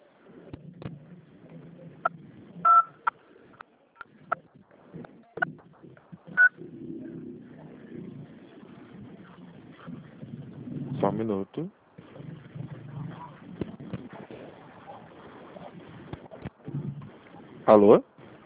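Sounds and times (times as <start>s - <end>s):
faint low noise: 0.0s - 18.4s
telephone clicks and blips while a phone call is transferred: 2.6s - 4.1s
speech: 11.2s - 11.8s, 17.7s - 18.1s.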